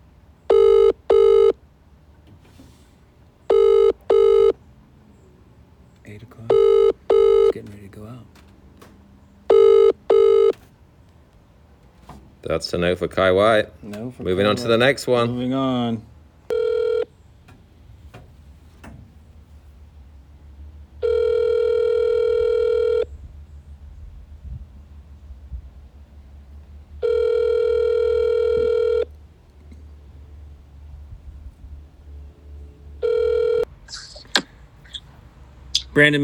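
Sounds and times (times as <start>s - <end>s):
phone call electronic ringback tones: 0.5s - 1.6s, 3.5s - 4.6s, 6.5s - 7.5s, 9.5s - 10.5s, 16.5s - 17.1s, 21.0s - 23.1s, 27.0s - 29.1s, 33.0s - 33.7s
phone line clicking open: 0.5s - 1.6s, 3.5s - 4.6s, 6.5s - 7.5s, 9.5s - 10.6s, 16.5s - 17.1s, 27.0s - 29.1s
speech: 7.6s - 8.4s, 12.4s - 16.1s, 36.0s - 36.2s.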